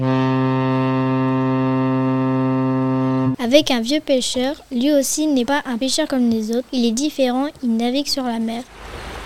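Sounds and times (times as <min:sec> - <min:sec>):
deep boat horn blast: 0:00.0 - 0:03.4
speech: 0:03.4 - 0:08.9.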